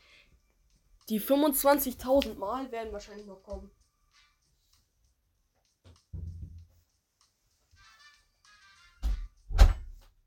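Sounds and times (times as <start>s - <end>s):
speech: 1.1s - 3.8s
room door being pushed closed and latching: 9.0s - 10.0s.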